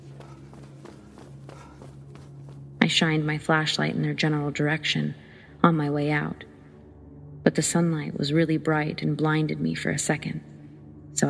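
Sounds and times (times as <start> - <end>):
footsteps of someone running: 0.0 - 2.7
speech: 2.9 - 6.5, 7.5 - 10.5.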